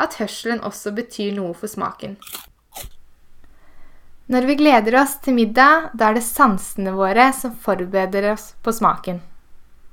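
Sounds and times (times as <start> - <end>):
speech: 0.0 - 3.0, 4.3 - 9.3
faint hiss: 0.0 - 9.9
person biting into and chewing a crisp carrot: 2.2 - 3.0.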